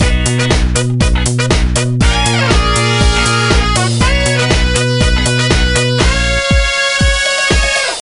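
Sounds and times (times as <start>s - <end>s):
disco flourish from game music: 0.0s - 8.0s.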